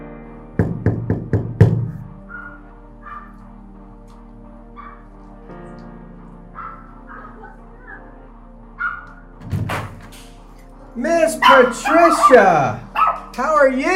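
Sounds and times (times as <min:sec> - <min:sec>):
knocking on a door: 0:00.6 - 0:02.1
speech: 0:11.0 - 0:12.8, 0:13.4 - 0:13.9.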